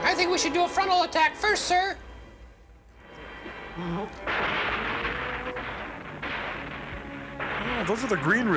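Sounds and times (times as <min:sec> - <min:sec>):
speech: 0:00.2 - 0:02.1, 0:03.8 - 0:04.5, 0:07.8 - 0:08.5
bombing explosions: 0:04.2 - 0:08.5.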